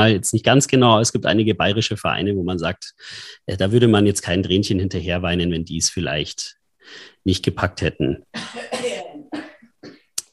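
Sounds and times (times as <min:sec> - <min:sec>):
speech: 0:00.0 - 0:09.0
person coughing: 0:08.3 - 0:10.2.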